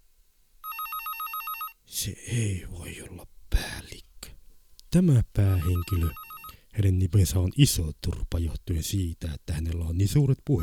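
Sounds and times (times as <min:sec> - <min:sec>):
telephone bell ringing: 0:00.6 - 0:01.8, 0:05.6 - 0:06.6
speech: 0:02.0 - 0:03.3, 0:04.9 - 0:06.2, 0:06.8 - 0:10.6.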